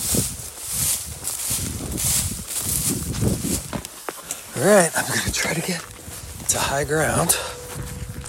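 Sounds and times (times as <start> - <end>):
person climbing a hill with footsteps scuffing and crunching over rough ground: 0.0 - 8.2
rustle of brush and gear: 0.0 - 8.2
speech: 4.6 - 5.9, 6.5 - 7.6.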